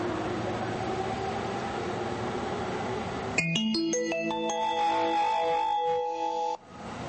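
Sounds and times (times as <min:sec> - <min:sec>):
steady rumbling railway platform din at a Japanese station: 0:00.0 - 0:07.0
bright electronic chime melody announcing a rapid train arrival: 0:03.4 - 0:06.6.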